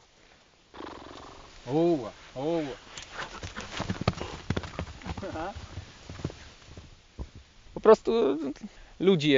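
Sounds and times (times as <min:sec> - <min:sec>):
speech: 0:01.7 - 0:02.8, 0:05.4 - 0:05.7, 0:07.9 - 0:09.3
forester's horse hooves clopping on asphalt: 0:03.0 - 0:07.5.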